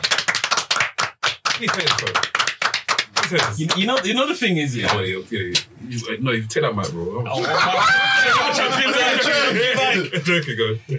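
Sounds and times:
hand clapping: 0.0s - 4.1s
speech: 1.6s - 2.4s, 3.3s - 10.9s
laughter: 7.3s - 10.8s.

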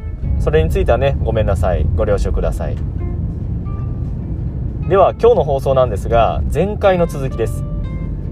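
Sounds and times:
car engine rumbling inside a moving vehicle: 0.0s - 8.3s
road and traffic noise: 0.0s - 8.3s
speech: 0.4s - 3.0s, 4.9s - 7.7s.

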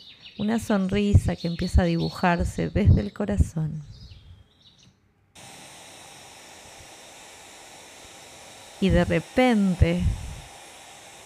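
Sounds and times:
bird chirps: 0.0s - 5.0s
speech: 0.4s - 4.0s, 8.8s - 10.2s.

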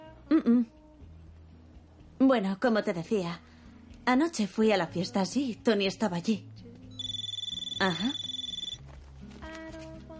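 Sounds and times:
steady sustained music tones: 0.0s - 10.1s
speech: 0.4s - 0.8s, 2.2s - 6.5s, 7.8s - 8.2s
telephone bell ringing: 7.0s - 8.8s.

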